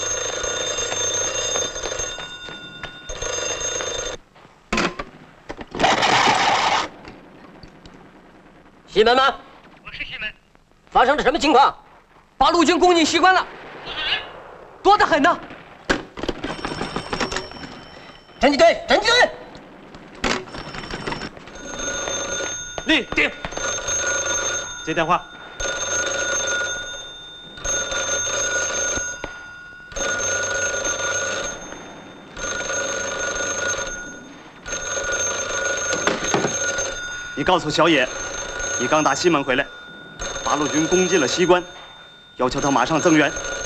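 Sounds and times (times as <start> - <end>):
telephone bell ringing: 0.0 - 4.2, 5.8 - 6.9, 16.2 - 19.6, 20.2 - 43.6
speech: 9.0 - 9.4, 10.9 - 11.8, 12.4 - 13.6, 14.8 - 15.5, 18.4 - 19.4, 22.9 - 23.5, 24.8 - 25.3, 37.5 - 38.0, 38.8 - 39.7, 40.5 - 41.8, 42.4 - 43.5.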